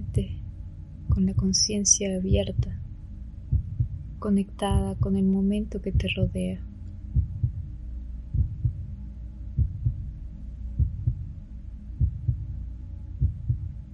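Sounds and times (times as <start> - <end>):
heartbeat thumping at a calm resting pace: 0.0 - 0.4, 1.1 - 1.7, 2.3 - 2.9, 3.5 - 5.3, 5.9 - 6.5, 7.1 - 10.1, 10.8 - 11.4, 12.0 - 12.6, 13.2 - 13.9
faint continuous hum: 0.0 - 13.9
speech: 0.2 - 0.4, 1.2 - 2.8, 4.2 - 6.7.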